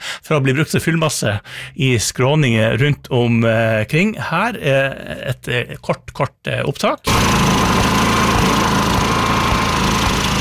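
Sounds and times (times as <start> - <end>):
speech: 0.3 - 7.8
generator engine running: 7.1 - 10.3.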